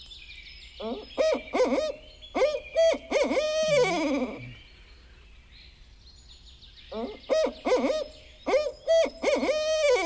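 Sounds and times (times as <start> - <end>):
faint hiss: 0.0 - 10.0
barred owl hooting call: 0.8 - 4.6, 6.9 - 10.0.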